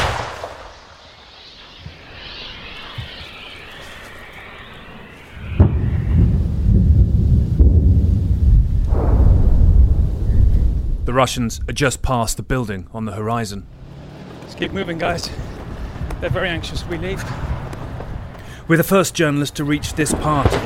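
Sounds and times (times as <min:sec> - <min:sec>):
artillery fire during a combat counter-offensive near Orikhiv in dusty heat: 0:00.0 - 0:01.8, 0:05.4 - 0:11.1, 0:19.9 - 0:20.6
speech: 0:11.2 - 0:13.8, 0:14.6 - 0:15.6, 0:16.2 - 0:17.4, 0:18.7 - 0:20.6.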